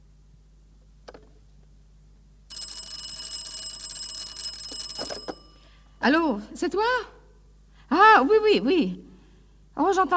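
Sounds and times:
telephone bell ringing on an old 1950s phone line: 2.5 - 5.9
speech: 6.0 - 7.2, 7.9 - 9.0, 9.8 - 10.1.

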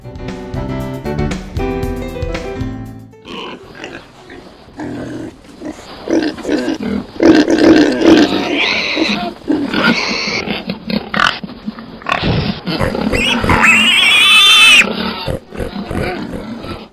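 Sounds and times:
short musical passage: 0.0 - 4.4
pigs grunting and oinking: 3.2 - 16.9
pig squealing shrilly: 6.1 - 11.4, 12.0 - 16.9.

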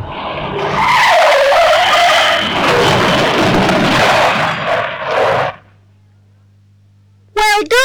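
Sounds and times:
car tires screeching braking hard at red traffic lights: 0.0 - 5.8
low rumble: 0.0 - 6.0.

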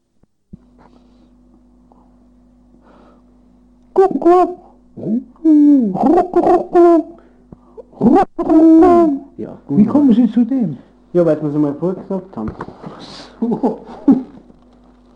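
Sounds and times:
steady electrical hum: 0.0 - 15.1
man imitating the cooing of doves: 3.9 - 9.4
speech: 4.0 - 7.1, 8.0 - 14.2
laughter: 13.4 - 14.4.

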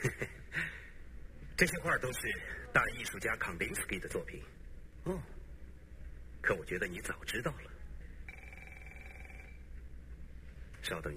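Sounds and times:
low constant hum: 0.0 - 11.1
speech: 1.6 - 5.4, 6.4 - 7.7, 10.8 - 11.1
telephone ringing: 8.3 - 9.7.

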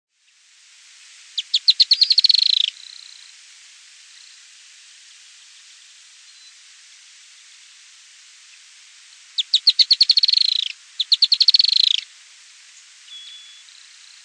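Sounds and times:
Firewood-gatherer Anumbius annumbi song: 1.4 - 2.7, 9.4 - 12.0.

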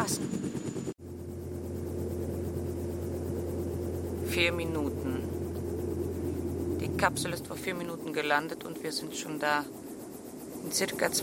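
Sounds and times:
helicopter engine droning in freezing cold: 0.0 - 11.2
speech: 4.4 - 5.4, 7.0 - 9.8, 10.6 - 11.2.

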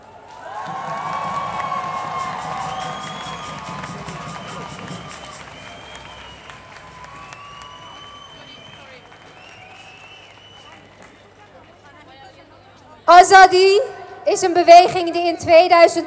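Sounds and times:
crowd clapping at a feminist march event: 0.0 - 12.2
speech: 13.2 - 16.0.

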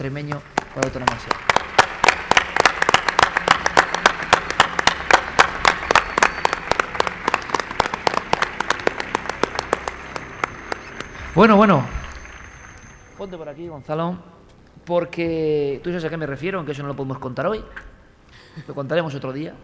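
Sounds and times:
speech: 0.0 - 1.5, 11.4 - 12.0, 13.2 - 17.9, 18.6 - 19.6
audience applause for a guest: 0.0 - 13.6.

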